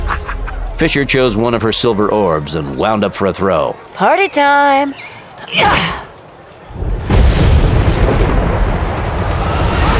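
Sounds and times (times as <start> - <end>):
laughter: 0.0 - 0.8
speech: 0.8 - 6.0
concussion grenade exploding in a front doorway: 6.8 - 9.9.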